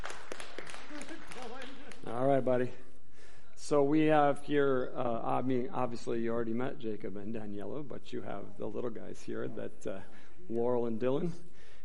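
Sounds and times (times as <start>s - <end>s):
small group clapping after a prayer: 0.0s - 2.6s
speech: 2.1s - 2.9s, 3.7s - 11.5s.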